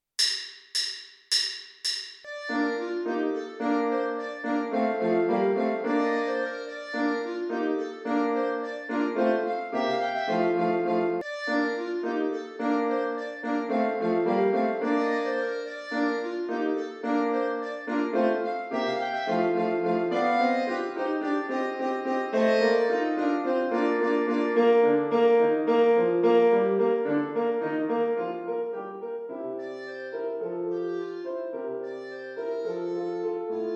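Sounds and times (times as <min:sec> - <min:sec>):
two clarinets and piano playing a finale: 0:01.8 - 0:33.7.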